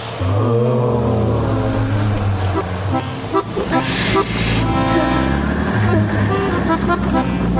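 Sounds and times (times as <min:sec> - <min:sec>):
street traffic engines rumbling: 0:00.0 - 0:07.5
car horns honking: 0:02.5 - 0:07.5.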